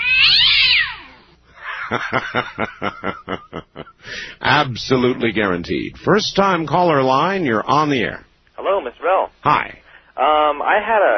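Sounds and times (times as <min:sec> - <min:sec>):
cat yowling in pain: 0:00.0 - 0:01.3
laughter: 0:01.6 - 0:04.0
speech: 0:01.9 - 0:11.1.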